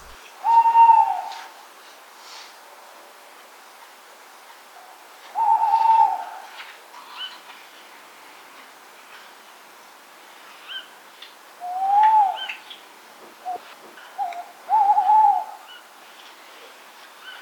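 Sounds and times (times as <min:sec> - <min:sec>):
male tawny owl courtship hooting: 0:00.0 - 0:01.5, 0:05.3 - 0:06.5, 0:11.6 - 0:12.6, 0:14.2 - 0:15.9.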